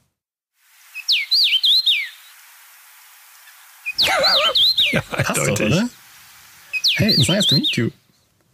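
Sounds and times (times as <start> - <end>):
recording of house finch song: 0.8 - 2.5, 3.1 - 8.5
laughter: 4.0 - 5.9
speech: 4.0 - 6.0, 7.0 - 8.0.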